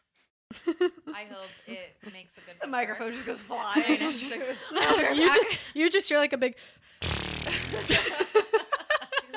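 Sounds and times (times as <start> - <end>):
speech: 0.6 - 8.6
loud buzzy fart: 7.0 - 8.0
person laughing: 7.2 - 9.3.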